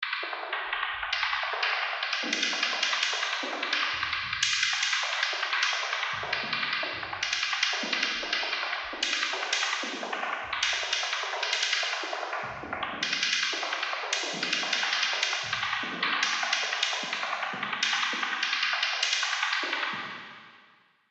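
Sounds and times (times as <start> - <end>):
percussion: 0.0 - 20.8.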